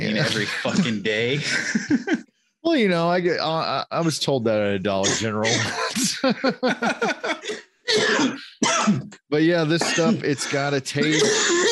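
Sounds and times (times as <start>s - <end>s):
laughter: 0.0s - 2.3s, 5.8s - 7.5s
speech: 0.0s - 7.6s, 9.3s - 11.6s
person coughing in a raspy fit: 5.1s - 6.2s, 7.4s - 9.2s, 9.8s - 11.6s.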